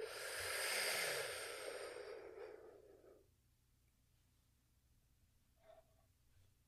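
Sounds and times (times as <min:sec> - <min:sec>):
deep breath during a guided relaxation exercise: 0:00.0 - 0:03.3.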